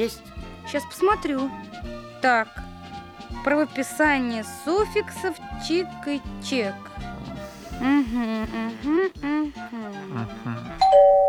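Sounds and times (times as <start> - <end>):
speech: 0.0 - 2.6, 3.3 - 7.1, 7.8 - 11.2
voiced sing-song sounds: 4.5 - 11.2
doorbell chime: 10.8 - 11.2.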